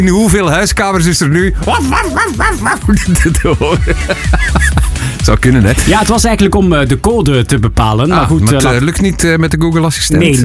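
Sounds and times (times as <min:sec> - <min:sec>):
speech: 0:00.0 - 0:10.4
dog yapping: 0:01.7 - 0:02.8
laughter: 0:01.7 - 0:05.1.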